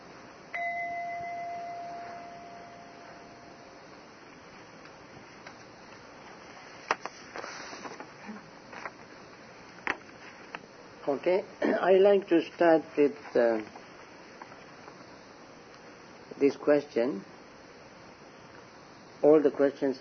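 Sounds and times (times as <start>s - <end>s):
bell struck to call people: 0.5s - 3.8s
speech: 11.1s - 13.8s, 16.4s - 17.3s, 19.2s - 20.0s.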